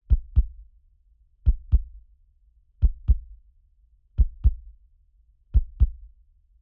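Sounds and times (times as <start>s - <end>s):
calm heartbeat: 0.0s - 0.7s, 1.4s - 2.1s, 2.8s - 3.4s, 4.2s - 4.8s, 5.6s - 6.2s.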